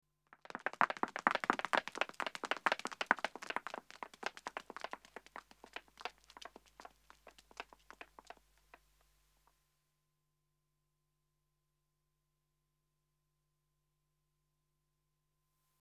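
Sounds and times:
two women running on pavement: 0.4 - 8.8.

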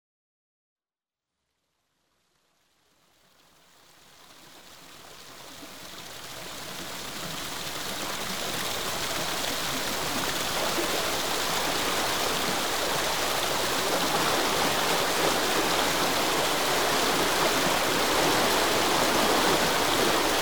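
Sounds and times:
water filling a lock on the River Thames: 4.0 - 20.3.

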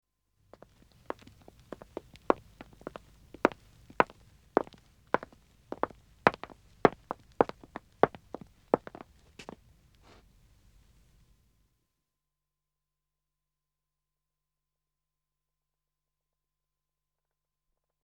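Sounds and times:
footsteps of two men walking on dead wood: 0.6 - 10.2.

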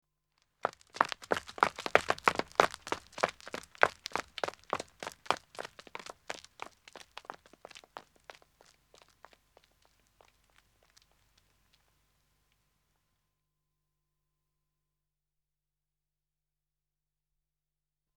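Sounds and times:
man running on a country road: 0.6 - 11.8.

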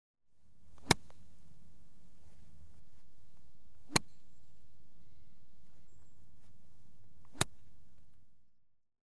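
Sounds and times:
golf chip shots: 0.6 - 8.3.

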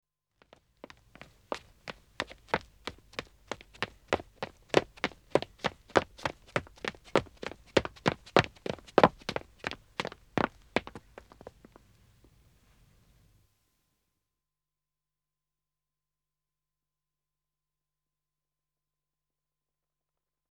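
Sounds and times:
two men running footsteps on dead acoustic wood: 0.5 - 11.6.

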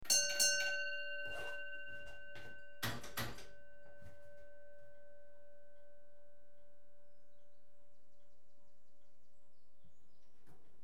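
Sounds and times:
railway signalling equipment as train enters: 0.0 - 8.0.

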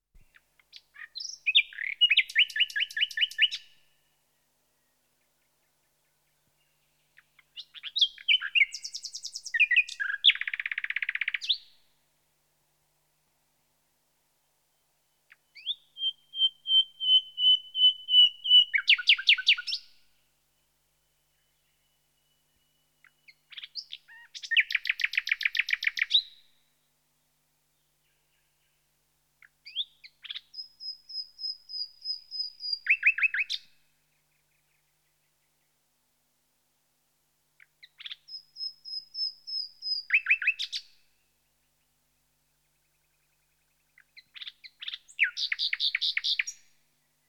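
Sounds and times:
nightingale Luscinia Megarhyncho singing: 0.2 - 3.9, 4.8 - 11.8, 15.2 - 20.0, 20.6 - 26.6, 29.4 - 35.7, 37.6 - 47.2.

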